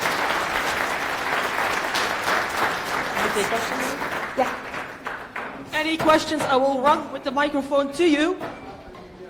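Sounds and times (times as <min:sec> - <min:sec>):
audience applause at the end of a talk about a software project: 0:00.0 - 0:05.7
speech: 0:03.4 - 0:04.7, 0:05.8 - 0:08.5.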